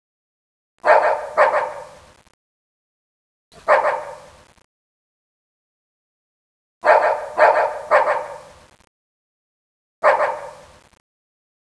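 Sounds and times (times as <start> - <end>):
dog barking: 0.8 - 2.0, 3.6 - 4.3, 6.8 - 8.5, 10.0 - 10.7.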